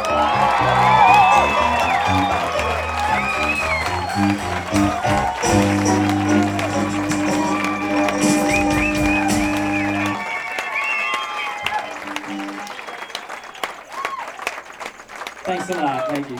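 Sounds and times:
band playing: 0.0s - 10.7s, 11.5s - 13.1s
laughter: 0.0s - 14.6s, 15.3s - 16.3s
large audience cheering with whoops and shouts: 0.0s - 16.3s
large audience clapping: 0.0s - 16.3s.

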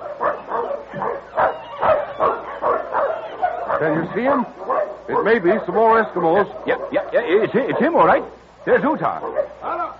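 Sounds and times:
pack of sled dogs barking: 0.0s - 9.9s
speech: 3.8s - 9.6s.

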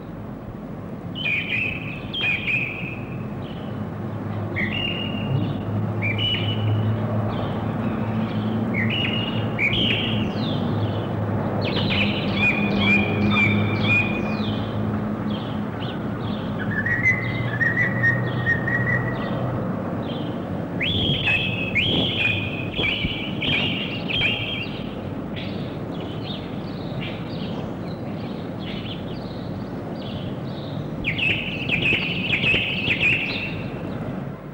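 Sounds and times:
traffic rumble: 0.0s - 34.5s
blackbird singing: 1.2s - 3.8s, 4.5s - 34.0s.

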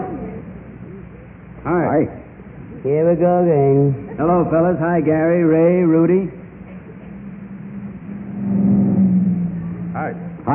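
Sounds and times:
speech: 1.6s - 6.4s
heavy vehicle rumbling past with low engine drone: 4.4s - 10.5s.

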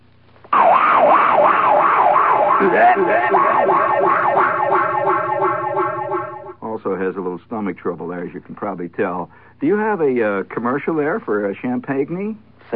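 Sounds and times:
wavering vocal noise imitating a fungus eating through a watermelon patch: 1.0s - 6.6s
speech: 2.6s - 3.8s, 6.8s - 12.7s.

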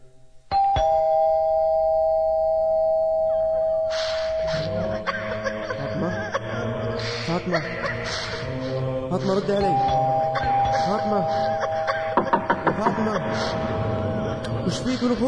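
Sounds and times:
electronic doorbell ringing: 0.5s - 5.0s, 9.6s - 12.4s
laughter: 4.4s - 15.2s
speech: 9.1s - 10.2s, 10.8s - 11.7s, 12.8s - 15.2s.

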